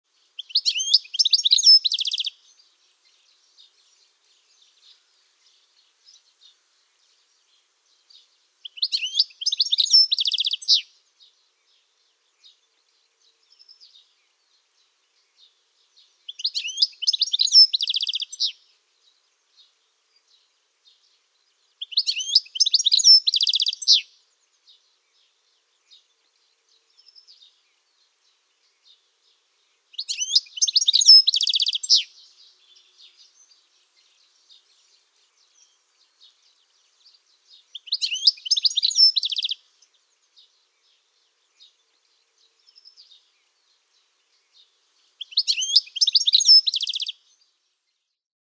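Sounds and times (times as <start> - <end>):
goldfinch singing: 0.4 - 6.2, 8.0 - 10.9, 16.0 - 18.6, 21.8 - 24.2, 29.9 - 43.7, 44.3 - 47.2.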